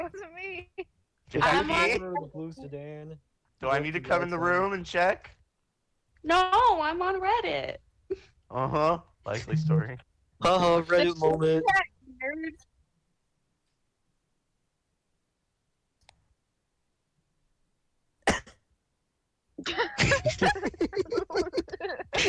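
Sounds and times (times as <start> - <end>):
speech: 0.0 - 5.4, 6.2 - 12.7, 19.6 - 22.2
rough vocal noise: 9.3 - 10.0
person coughing: 18.3 - 18.6
laughter: 19.7 - 22.2.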